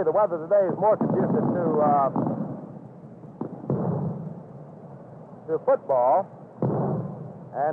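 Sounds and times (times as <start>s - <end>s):
speech: 0.0s - 2.3s, 5.5s - 6.8s, 7.6s - 7.7s
low continuous rumble: 0.0s - 7.7s
fireworks rockets exploding at a baseball stadium: 0.6s - 4.7s, 6.6s - 7.7s.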